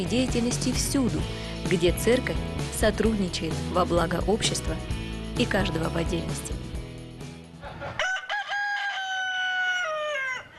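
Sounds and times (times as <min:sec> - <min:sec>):
speech: 0:00.0 - 0:06.6
rooster crowing: 0:07.6 - 0:10.5.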